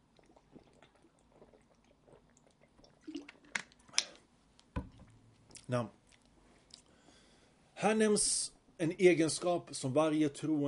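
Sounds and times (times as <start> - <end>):
water being poured: 0.0 - 3.8
person sipping and gulping water: 0.0 - 4.2
speech: 5.7 - 6.0, 7.8 - 10.6.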